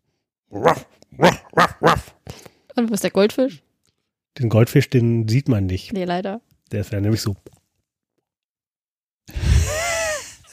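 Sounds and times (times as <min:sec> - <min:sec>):
speech: 0:00.5 - 0:01.4, 0:02.8 - 0:03.7, 0:04.4 - 0:07.6
person imitating a dog barking: 0:00.5 - 0:02.2.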